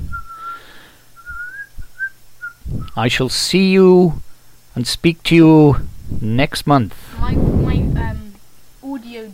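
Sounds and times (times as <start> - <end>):
whistling a clear high tune: 0.1 - 3.0
speech: 3.0 - 8.2.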